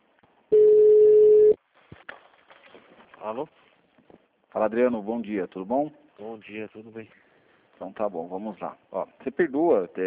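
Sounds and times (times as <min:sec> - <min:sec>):
electronic beep from a municipal office's automated telephone system: 0:00.5 - 0:01.6
speech: 0:03.2 - 0:03.6, 0:04.6 - 0:07.2, 0:07.8 - 0:10.0.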